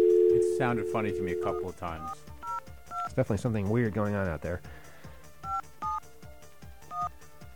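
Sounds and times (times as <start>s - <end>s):
touch-tone beeps from a phone keypad being dialed: 0.0s - 3.1s
speech: 0.6s - 2.3s, 3.2s - 4.8s.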